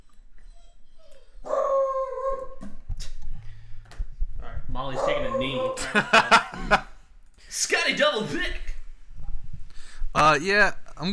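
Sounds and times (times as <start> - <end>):
dog howling and barking: 1.4 - 2.6, 5.0 - 5.8
speech: 4.8 - 6.9, 7.9 - 8.6, 10.2 - 11.1
laughter: 5.8 - 7.0.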